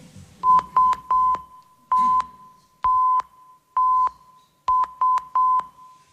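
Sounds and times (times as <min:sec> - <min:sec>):
Morse code SOS distress signal beeps: 0:00.4 - 0:06.0.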